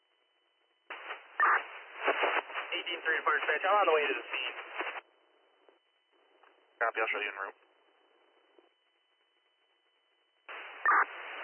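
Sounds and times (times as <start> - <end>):
harsh crackling radio static of a garbled transmission: 0.9 - 8.8, 10.4 - 11.4
speech: 2.8 - 4.8, 6.8 - 7.6.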